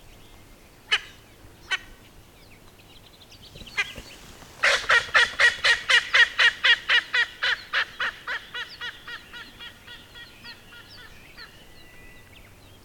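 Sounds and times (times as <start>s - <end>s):
Erckel's spurfowl calling: 3.6s - 11.6s.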